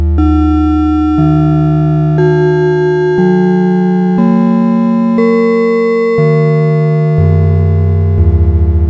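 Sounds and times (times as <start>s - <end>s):
log bells: 0.2s - 8.8s.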